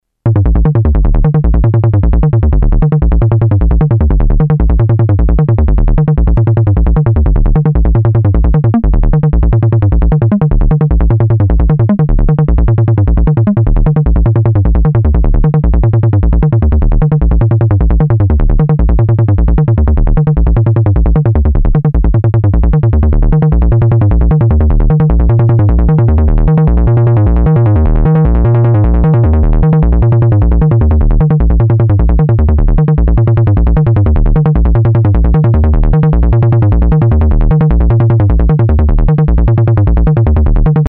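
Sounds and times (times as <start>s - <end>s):
bass sequence: 0.2s - 40.8s.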